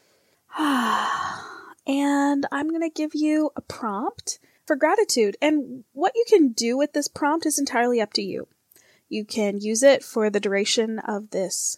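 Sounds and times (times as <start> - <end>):
deep breath in and out: 0.0 - 1.7
speech: 1.9 - 11.7.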